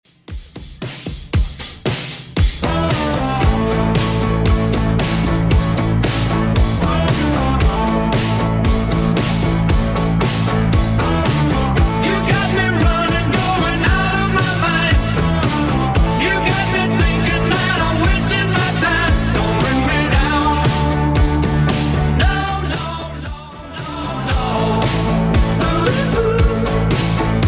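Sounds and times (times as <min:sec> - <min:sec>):
70s style drum machine beat: 0:00.0 - 0:27.4.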